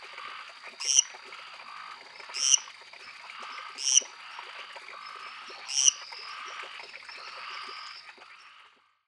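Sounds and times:
Lesser treefrog Dendropsophus minutus calling with short bright creaky notes: 0.2 - 2.7, 3.4 - 4.4, 5.0 - 8.7.

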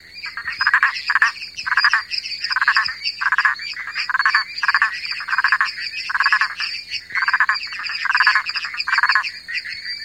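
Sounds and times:
Boana prasina calling: 0.0 - 10.0.

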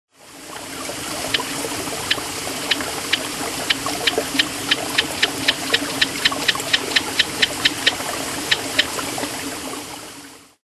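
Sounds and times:
Mantidactylus zipperi frog: 1.3 - 9.0.

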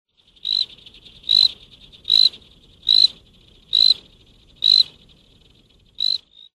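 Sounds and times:
Paradoxophyla palmata frog calling: 0.4 - 4.0, 4.6 - 5.0, 6.0 - 6.5.

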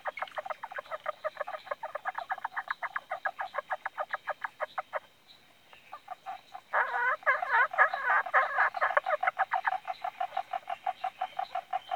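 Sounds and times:
Indian bronzed frog Indosylvirana temporalis calling in clicking pulses: 0.0 - 5.1, 5.8 - 11.9.

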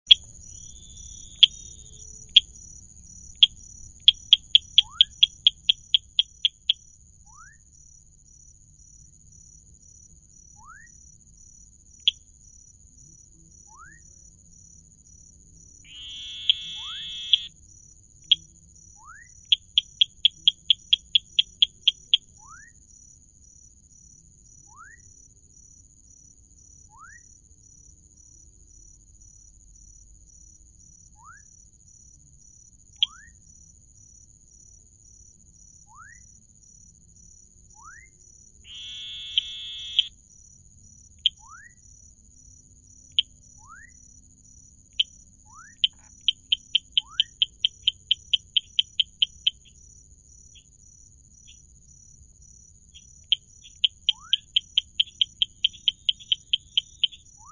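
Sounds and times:
Dendropsophus rubicundulus: 0.0 - 7.7, 10.5 - 11.2, 12.0 - 12.3, 13.6 - 14.4, 15.8 - 17.6, 18.2 - 22.9, 24.6 - 25.2, 26.8 - 27.4, 31.1 - 31.6, 32.9 - 33.5, 35.8 - 36.4, 37.7 - 40.2, 41.2 - 41.9, 43.1 - 44.2, 44.9 - 49.9, 51.4 - 51.7, 52.9 - 57.5.

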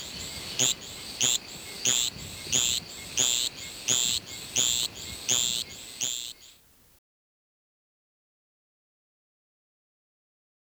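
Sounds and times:
javelin frog Litoria microbelos calling with thin high chirps: 0.0 - 6.6.

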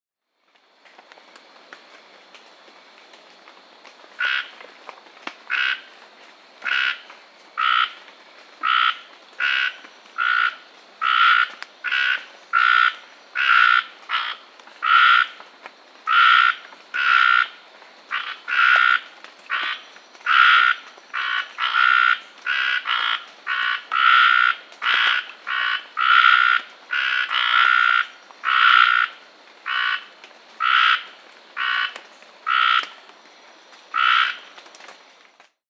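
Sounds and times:
Scinax hayii frog calling: 4.2 - 4.6, 5.4 - 6.0, 6.6 - 15.4, 16.0 - 33.0, 33.9 - 34.6.

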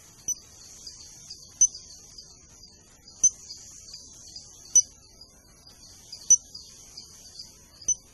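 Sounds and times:
Anodonthyla moramora calling: 0.2 - 5.1, 5.9 - 7.0, 7.8 - 8.1.

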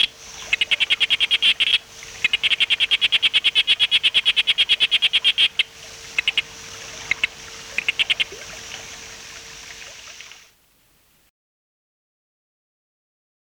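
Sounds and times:
Sharp-snouted day frog calling: 0.0 - 8.9
steady background hum: 0.0 - 11.3.

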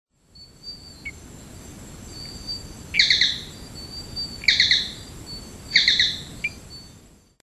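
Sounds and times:
Gephyromantis pseudoasper frog calling: 0.4 - 1.2, 2.1 - 6.9.

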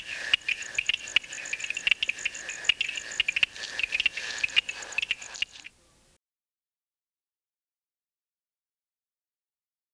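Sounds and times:
Stonemason toadlet Uperoleia lithomoda tapping click calls: 0.0 - 5.7
steady high hum: 0.0 - 6.0.

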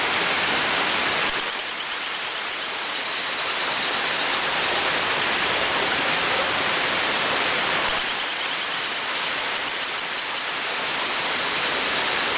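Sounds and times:
rushing stream: 0.0 - 12.3
Hylodes phyllodes giving whistled chirps: 1.3 - 4.3, 7.9 - 12.3.

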